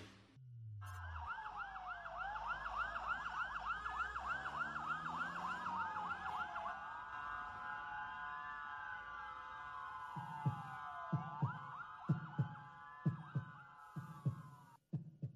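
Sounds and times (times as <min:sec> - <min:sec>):
emergency siren wailing: 0:00.8 - 0:14.3
heartbeat of deep paired thumps: 0:10.2 - 0:15.3.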